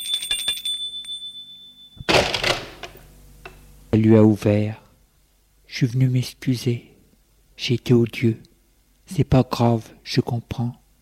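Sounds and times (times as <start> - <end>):
electronic doorbell ringing: 0.0 - 2.2
speech: 4.0 - 4.8, 5.7 - 6.9, 7.6 - 8.5, 9.1 - 10.8.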